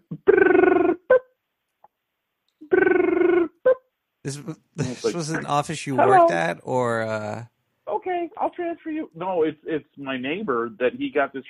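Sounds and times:
African grey parrot mimicking automated phone-system noises: 0.0 - 1.3, 2.6 - 3.8, 6.0 - 6.4
speech: 4.3 - 7.5, 8.6 - 11.4.

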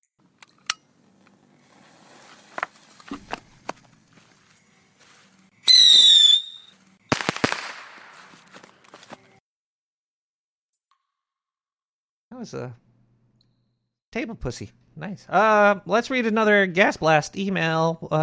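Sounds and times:
bottle rocket firework whistling hiss: 5.6 - 8.4
bottle rocket firework bang with a crackling tail: 7.1 - 8.4
speech: 12.4 - 12.8, 14.1 - 18.2.

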